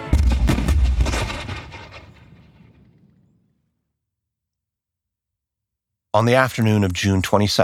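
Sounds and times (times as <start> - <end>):
heavy cannon fire from a British warship: 0.0 - 3.5
speech: 6.1 - 7.6.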